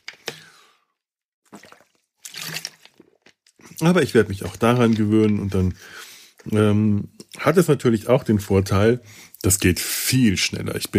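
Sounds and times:
sipping and swallowing of water: 1.4s - 6.5s
speech: 1.5s - 1.8s, 3.8s - 10.9s.

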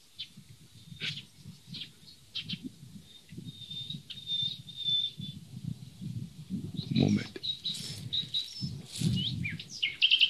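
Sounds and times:
nightingale singing: 0.0s - 10.2s
speech: 7.1s - 7.5s.

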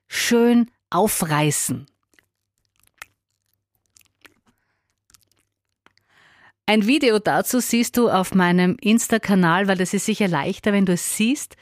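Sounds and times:
speech: 0.3s - 1.9s, 6.7s - 11.5s
wet smacking chewing with open mouth: 1.8s - 6.2s.

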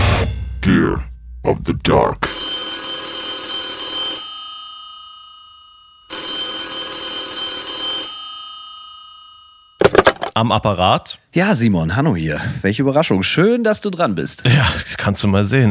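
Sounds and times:
speech: 0.7s - 2.3s, 10.4s - 15.6s
old-style telephone bell ringing: 2.2s - 9.8s.

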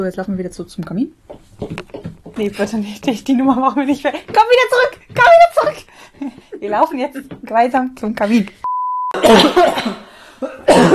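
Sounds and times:
speech: 0.0s - 1.8s, 2.4s - 5.0s, 5.7s - 8.6s, 9.2s - 10.0s
short steady beep: 8.6s - 9.2s
two video game characters coughing: 9.1s - 10.9s.

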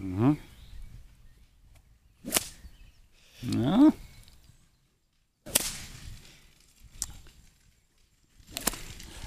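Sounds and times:
speech: 0.2s - 0.5s
whip cracking from a flick of the wrist: 2.2s - 2.6s, 5.4s - 6.2s, 8.4s - 9.2s.

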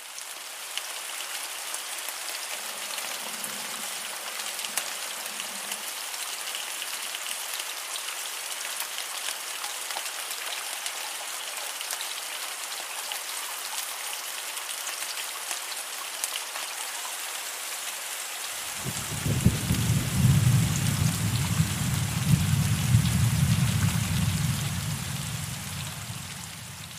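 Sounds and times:
steady hissing rain: 0.0s - 26.9s
deep heavy rumble of thunder: 18.7s - 26.9s.

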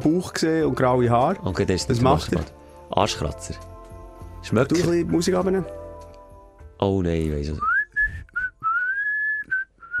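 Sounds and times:
speech: 0.0s - 3.7s, 4.4s - 5.8s, 6.8s - 7.7s
person whistling a short tune in a sauna: 7.6s - 9.9s.

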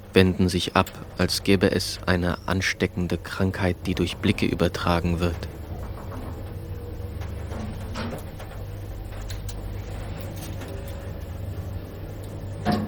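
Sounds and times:
faint elevator rattles: 0.0s - 12.8s
steady low mechanical hum of a running elevator: 0.0s - 12.8s
speech: 0.2s - 5.6s.

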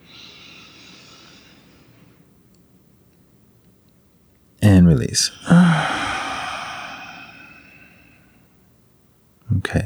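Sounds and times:
deep breath drawn in during a guided breathing exercise: 0.0s - 2.2s, 5.3s - 8.6s
speech: 4.8s - 6.0s.

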